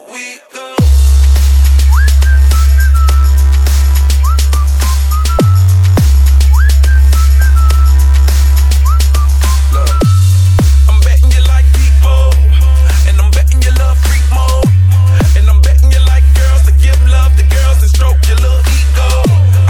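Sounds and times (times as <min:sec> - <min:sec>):
loud thumping dance beat with deep bass: 0:00.8 - 0:19.6
bright tuneful whistle melody with sliding notes: 0:01.6 - 0:10.6.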